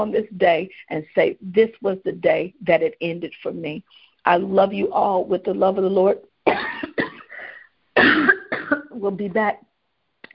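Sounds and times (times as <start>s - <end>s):
speech: 0.0s - 6.8s, 9.0s - 9.7s
harsh raspy cough: 6.5s - 7.4s, 8.0s - 8.9s.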